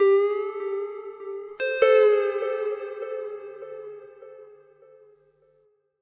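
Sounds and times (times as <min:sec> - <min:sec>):
clean electric guitar wah melody: 0:00.0 - 0:04.5.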